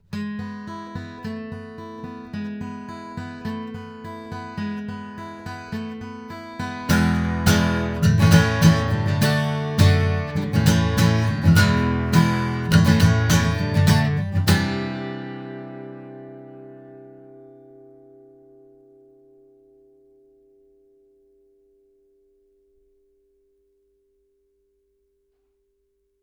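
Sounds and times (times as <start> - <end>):
guitar recorded with MXL R144 microphone: 0.0 - 20.3.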